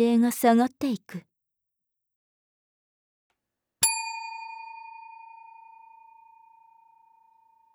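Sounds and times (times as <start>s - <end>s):
speech: 0.0s - 1.3s
single bell strike with clear mid-pitched tone: 3.8s - 7.7s.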